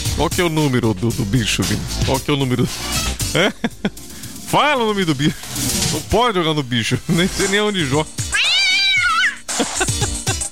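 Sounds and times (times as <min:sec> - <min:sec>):
speech: 0:00.2 - 0:08.3
laughter: 0:03.3 - 0:04.0, 0:09.5 - 0:10.5
cat meowing: 0:08.2 - 0:09.5.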